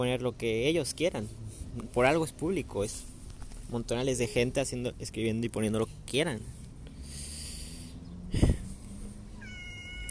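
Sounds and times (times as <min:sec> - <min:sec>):
speech: 0:00.0 - 0:03.1, 0:03.7 - 0:06.6
cat giving a single short meow: 0:09.4 - 0:10.1.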